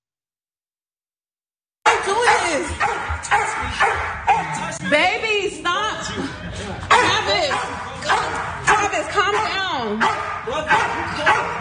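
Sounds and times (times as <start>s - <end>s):
police dog barking during arrest: 1.8s - 4.8s, 6.9s - 11.5s
laughter: 2.0s - 9.8s
raised human voices: 2.0s - 11.5s
speech: 2.1s - 11.5s.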